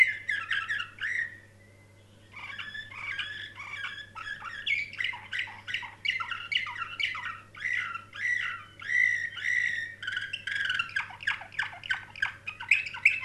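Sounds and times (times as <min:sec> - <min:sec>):
canary song with chirped notes and sustained whistles: 0:00.0 - 0:13.2
faint steady hum: 0:00.0 - 0:13.2.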